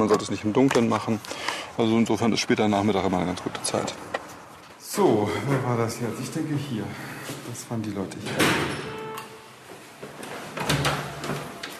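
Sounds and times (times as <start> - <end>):
speech: 0.0 - 4.1, 5.0 - 8.9
front door being opened at a home: 8.2 - 11.7.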